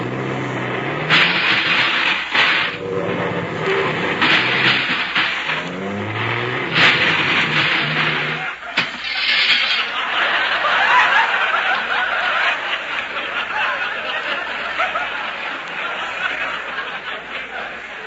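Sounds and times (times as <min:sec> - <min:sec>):
bus engine rumbling as the bus pulls up and parks between two cars: 0:00.0 - 0:11.6
laughter: 0:03.0 - 0:09.0, 0:09.6 - 0:18.0.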